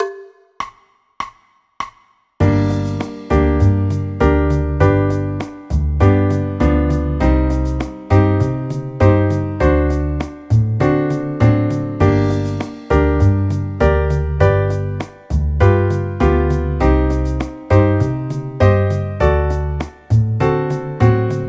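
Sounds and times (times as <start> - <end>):
G minor chord progression: 2.4 - 21.4.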